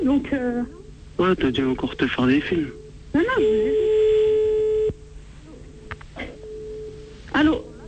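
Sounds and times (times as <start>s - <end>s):
speech: 0.0s - 4.1s
faint noise: 0.0s - 7.8s
telephone ringback tone of an outgoing call: 3.4s - 4.9s, 6.3s - 7.1s.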